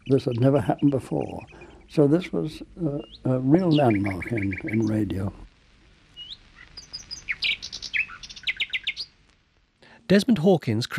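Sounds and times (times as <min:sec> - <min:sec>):
songbird singing: 0:00.0 - 0:09.4
speech: 0:00.1 - 0:05.4, 0:10.1 - 0:10.9.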